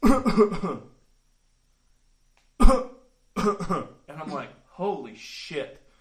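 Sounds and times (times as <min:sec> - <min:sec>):
speech: 0:00.0 - 0:00.9, 0:02.7 - 0:05.8
voice imitating dry coughs and gagging before throwing up: 0:00.0 - 0:01.0, 0:02.6 - 0:04.5.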